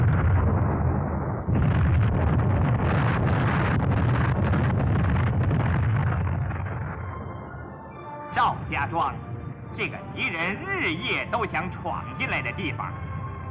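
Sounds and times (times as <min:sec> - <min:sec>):
landmine explosions across a village: 0:00.0 - 0:07.4
speech: 0:08.9 - 0:12.9.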